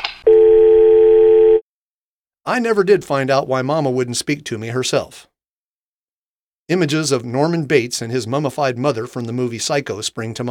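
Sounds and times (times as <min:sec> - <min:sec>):
telephone dial tone: 0:00.2 - 0:01.6
speech: 0:02.5 - 0:05.3, 0:06.7 - 0:10.4.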